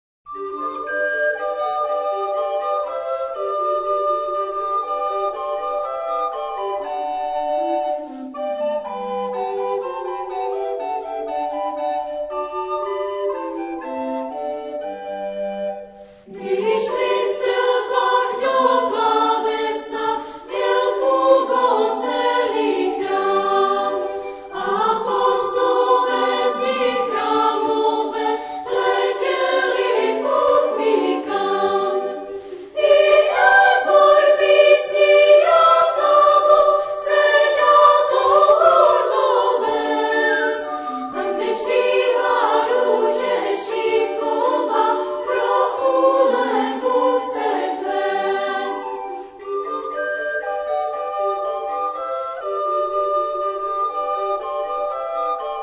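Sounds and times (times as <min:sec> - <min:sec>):
flute ensemble playing: 0:00.3 - 0:55.6
chamber choir singing: 0:16.3 - 0:50.3.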